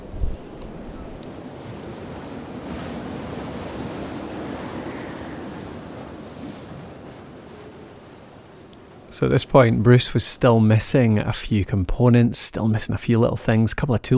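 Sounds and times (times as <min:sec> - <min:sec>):
wind blowing over a tent pitched on hard ground: 0:00.0 - 0:09.1
speech: 0:09.2 - 0:14.1.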